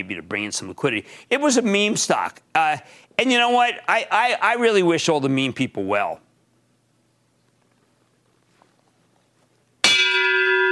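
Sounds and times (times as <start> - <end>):
speech: 0.0 - 6.3
single loud bell strike: 9.8 - 10.7.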